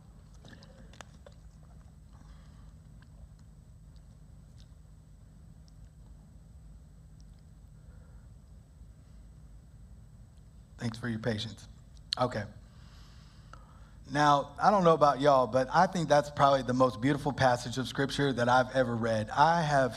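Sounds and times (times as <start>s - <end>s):
low hum: 0.0s - 19.9s
person sipping water: 0.2s - 4.8s
swallow: 0.3s - 3.4s
speech: 10.8s - 12.6s, 14.1s - 19.9s.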